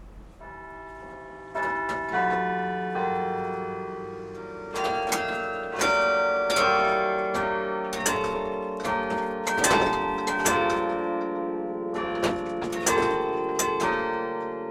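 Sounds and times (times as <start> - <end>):
carillon bells ringing a flowing melody: 0.4 - 14.6
wooden carillon keys clacking: 0.9 - 14.6.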